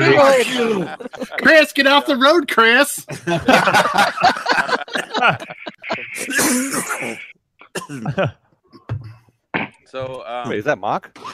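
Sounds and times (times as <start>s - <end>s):
laughter: 0.0s - 2.0s, 3.1s - 7.3s, 8.0s - 8.3s
speech: 0.2s - 8.4s, 9.6s - 11.3s
person coughing with throaty vocal noises: 5.4s - 9.8s.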